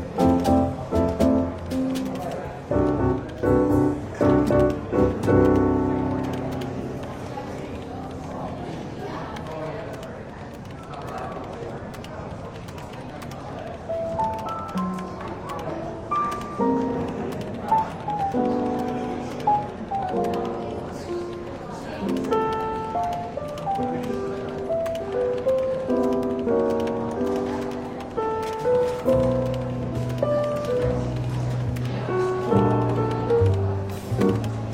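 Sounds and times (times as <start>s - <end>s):
soft jazz in a bookshop café: 0.0s - 8.7s, 14.0s - 34.7s
gentle piano-like melody: 0.0s - 10.0s, 13.2s - 34.7s
low murmur of voices in a bookshop café: 0.0s - 34.7s.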